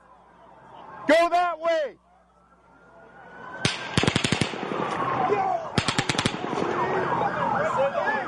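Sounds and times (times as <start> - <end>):
wailing siren: 0.0 - 8.2
speech: 1.1 - 2.1
bursts of gunshots: 3.6 - 7.2.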